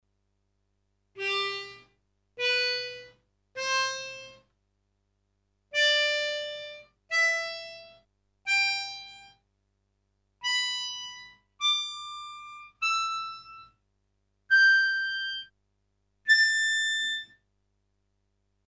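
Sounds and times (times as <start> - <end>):
staccato harmonica phrase: 1.2 - 4.4, 5.8 - 7.9, 10.4 - 13.7, 14.5 - 15.5, 16.3 - 17.3.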